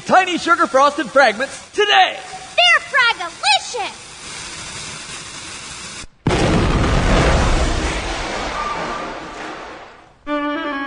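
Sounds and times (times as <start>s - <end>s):
speech: 0.1s - 4.0s
loud explosion of a lit box: 6.2s - 10.2s.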